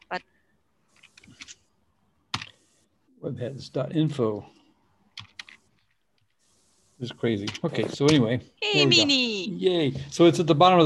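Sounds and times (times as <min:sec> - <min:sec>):
speech: 0:00.1 - 0:00.3, 0:03.3 - 0:04.6, 0:07.0 - 0:10.8
typing on a computer keyboard: 0:05.2 - 0:05.6.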